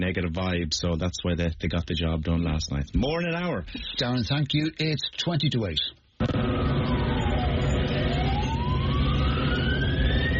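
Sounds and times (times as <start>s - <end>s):
speech: 0.0s - 7.1s
siren wailing during a street disturbance: 6.2s - 10.3s.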